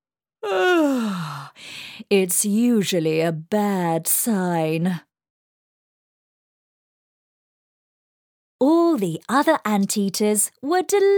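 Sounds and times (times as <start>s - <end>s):
person giving a drawn-out voiced yawn: 0.4s - 1.5s
speech: 2.1s - 5.1s, 8.6s - 11.1s.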